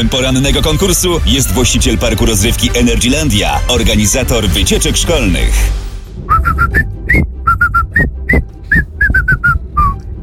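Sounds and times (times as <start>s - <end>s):
speech: 0.0s - 5.8s
whistled melody: 6.2s - 10.1s.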